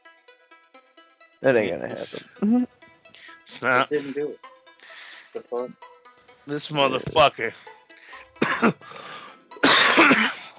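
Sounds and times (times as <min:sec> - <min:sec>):
speech: 0:01.4 - 0:02.8, 0:03.6 - 0:04.5, 0:05.3 - 0:07.7, 0:08.6 - 0:08.8
harsh painful hacking coughs: 0:08.4 - 0:10.5.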